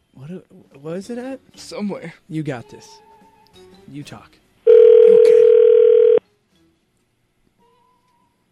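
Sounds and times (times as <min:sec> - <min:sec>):
speech: 0:00.3 - 0:03.1, 0:03.9 - 0:04.4
electronic telephone keypad tone: 0:04.7 - 0:06.2.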